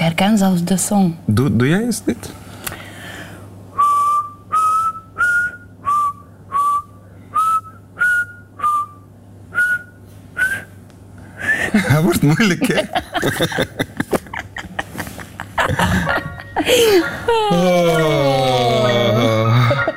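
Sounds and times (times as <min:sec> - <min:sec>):
speech: 0:00.1 - 0:02.4, 0:12.0 - 0:13.9, 0:16.6 - 0:18.4
person whistling a simple melody: 0:03.8 - 0:10.7
laughter: 0:11.6 - 0:19.9.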